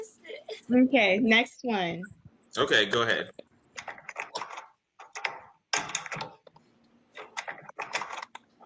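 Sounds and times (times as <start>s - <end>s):
speech: 0.7s - 3.4s
door being unlocked with metallic clicks and rattles: 3.8s - 6.5s, 7.2s - 8.4s.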